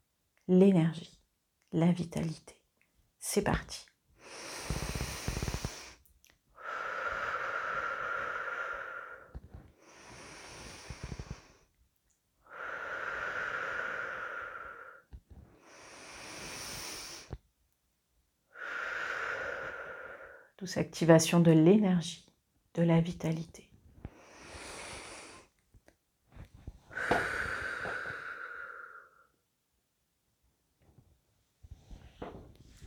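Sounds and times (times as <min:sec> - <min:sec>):
speech: 0:00.5 - 0:02.6, 0:03.2 - 0:04.8, 0:20.7 - 0:22.2, 0:22.8 - 0:23.7
slow deep breathing during a guided breathing exercise: 0:04.2 - 0:06.0, 0:06.6 - 0:11.8, 0:12.4 - 0:17.4, 0:18.5 - 0:20.6, 0:24.0 - 0:25.6, 0:26.3 - 0:29.4.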